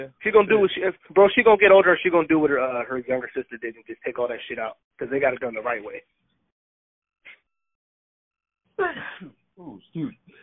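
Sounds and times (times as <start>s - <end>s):
speech: 0.0s - 6.2s, 8.8s - 10.4s
sneeze: 8.8s - 9.4s.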